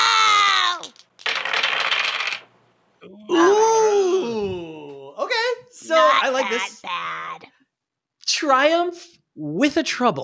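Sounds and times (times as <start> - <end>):
dice rolled rattling and tumbling across a surface in a game: 0.7 - 2.5
voices exclaiming: 3.0 - 7.6
speech: 6.3 - 7.1, 8.4 - 10.2.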